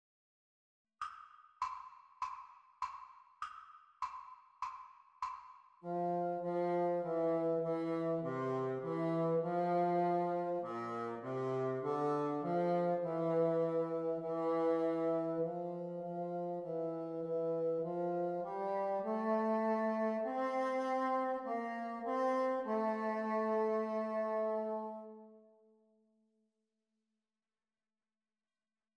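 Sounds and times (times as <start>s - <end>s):
bassoon duet: 5.8s - 25.4s.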